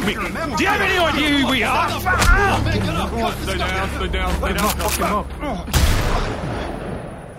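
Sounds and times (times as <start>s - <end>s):
speech: 0.1s - 6.6s
gunshot: 5.7s - 7.3s.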